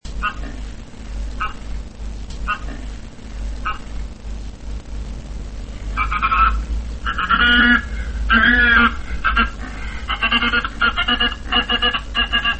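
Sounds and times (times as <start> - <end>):
agitated hawfinch calling: 6.0 - 12.5.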